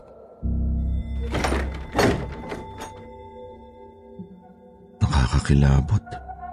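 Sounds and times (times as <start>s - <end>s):
heavy door being shut: 1.2s - 3.2s
rattling clattering impacts of settling door: 1.2s - 3.2s
speech: 5.4s - 6.1s.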